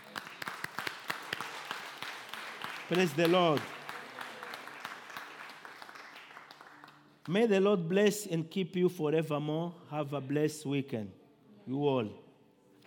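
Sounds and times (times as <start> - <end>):
crowd applauding in a reverberant room: 0.0 - 7.3
speech: 2.9 - 3.8, 7.3 - 12.2.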